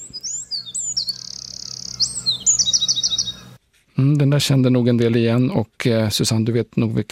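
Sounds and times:
Eurasian wren call with modulated whistling and trills: 0.0 - 3.6
speech: 4.0 - 7.1.

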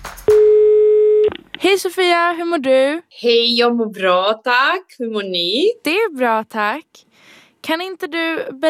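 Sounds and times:
steady telephone line tone while calling someone: 0.3 - 1.3
speech: 1.7 - 8.6.

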